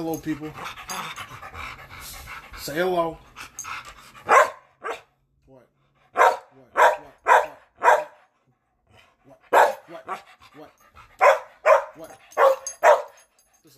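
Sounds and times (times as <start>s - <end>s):
speech: 0.0s - 0.8s, 2.6s - 3.3s
two dogs panting: 0.0s - 5.0s, 5.7s - 13.7s
two dogs barking: 4.2s - 5.1s, 6.1s - 8.4s, 9.4s - 10.4s, 11.0s - 13.3s.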